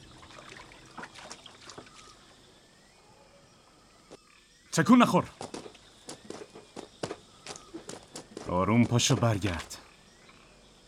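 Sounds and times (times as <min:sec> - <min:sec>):
water trickling: 0:00.0 - 0:02.5
speech: 0:04.8 - 0:05.6, 0:08.5 - 0:09.8.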